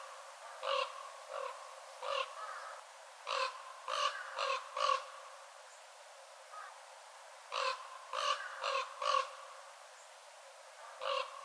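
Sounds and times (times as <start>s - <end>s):
northern raven raspy throaty caws: 0.4s - 5.3s, 6.5s - 6.8s, 7.5s - 9.6s, 10.8s - 11.4s.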